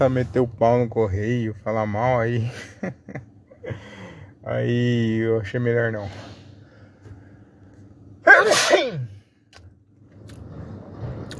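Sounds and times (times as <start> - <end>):
speech: 0.0 - 3.8, 4.4 - 6.3
laughter: 2.4 - 4.0
loud sneeze: 8.3 - 9.2.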